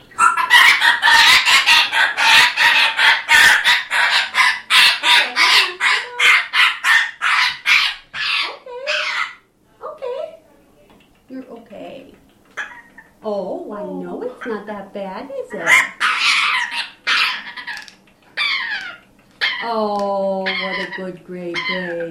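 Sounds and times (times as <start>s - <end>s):
gray parrot wrapped in a towel squawking in distress at a Seattle clinic: 0.0s - 9.5s, 12.6s - 13.2s, 15.4s - 22.1s
speech: 21.0s - 22.1s.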